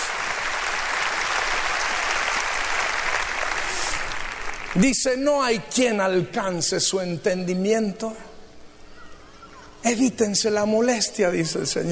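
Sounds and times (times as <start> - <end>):
congregation applauding: 0.0 - 4.8
speech: 4.7 - 8.3, 9.8 - 11.8.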